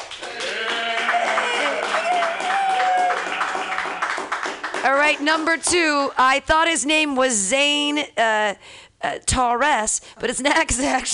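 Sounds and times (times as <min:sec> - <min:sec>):
audience clapping at an open-mic comedy night: 0:00.0 - 0:05.7
people cheering: 0:00.2 - 0:05.0
speech: 0:04.8 - 0:11.1.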